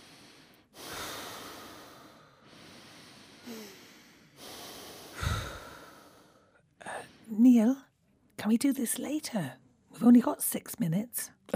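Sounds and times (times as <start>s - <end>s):
slow deep breathing: 0.0s - 7.3s
speech: 7.4s - 7.8s, 8.4s - 11.5s.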